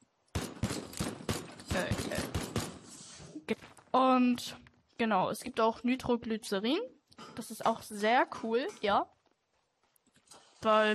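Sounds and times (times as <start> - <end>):
gunfire from weapons in a video game, a shotgun among them: 0.3 - 3.2
speech: 3.5 - 9.2, 10.6 - 10.9.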